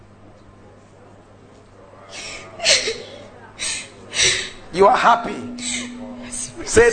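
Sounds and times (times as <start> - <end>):
woman crying with breathy shuddering sobs and whimper: 2.2 - 4.6
speech: 4.8 - 5.7, 6.7 - 6.9.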